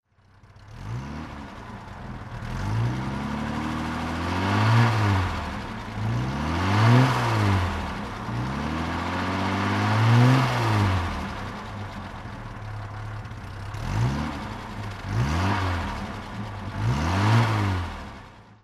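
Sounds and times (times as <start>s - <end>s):
Jag 420 engine throttle revving: 0.5s - 18.6s.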